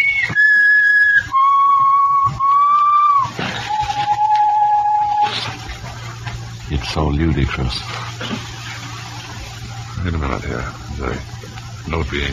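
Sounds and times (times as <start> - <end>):
person whistling long steady notes: 0.0 - 5.6
speech: 7.2 - 8.4, 10.4 - 11.3, 11.9 - 12.3.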